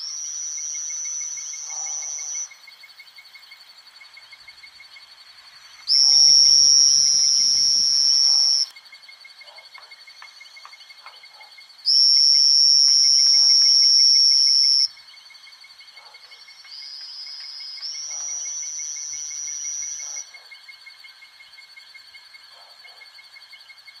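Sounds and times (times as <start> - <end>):
two-colored oval frog buzzing: 0.0 - 2.6, 5.9 - 8.7, 11.9 - 14.9, 17.2 - 20.4
insects buzzing: 0.0 - 23.9.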